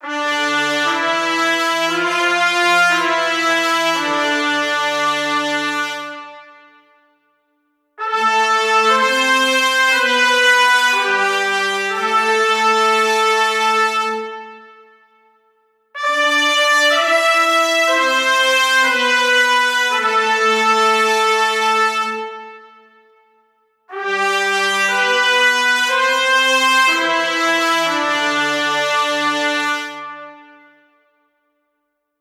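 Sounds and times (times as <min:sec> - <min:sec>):
horn section stem in A minor: 0:00.0 - 0:06.9, 0:08.0 - 0:15.1, 0:16.0 - 0:22.9, 0:23.9 - 0:30.8.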